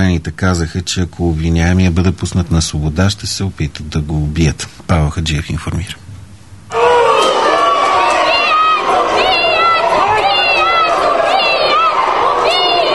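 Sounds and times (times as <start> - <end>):
speech: 0.0 - 6.0
large crowd shouting angrily at a courthouse: 6.7 - 12.9.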